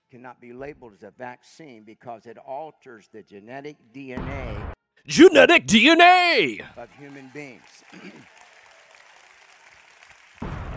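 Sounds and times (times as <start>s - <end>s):
speech: 0.1s - 8.4s
applause: 5.1s - 10.7s.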